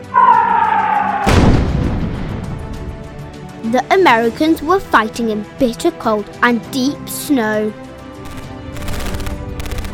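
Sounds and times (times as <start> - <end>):
artillery shell explosion during the shelling of a besieged town in winter: 1.2 - 2.6
speech: 3.6 - 7.8.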